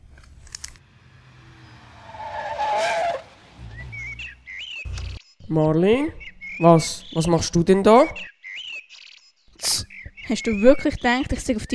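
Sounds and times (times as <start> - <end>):
car engine rumbling: 0.0 - 5.2
car tires squealing in a skid at a forest hut: 0.9 - 4.4
birds chirping: 1.1 - 11.7
speech: 5.5 - 8.3, 10.3 - 11.7.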